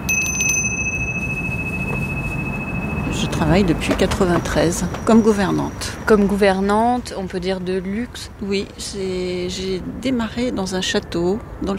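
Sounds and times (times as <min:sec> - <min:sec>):
small hand bell used to summon a housekeeper ringing: 0:00.0 - 0:04.1
speech: 0:03.4 - 0:11.7.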